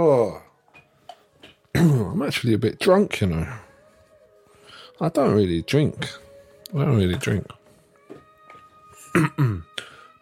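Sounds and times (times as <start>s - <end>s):
speech: 0.0s - 0.4s, 1.8s - 3.6s, 5.0s - 7.6s, 9.2s - 9.7s
person clearing throat: 1.7s - 2.2s, 9.0s - 9.8s.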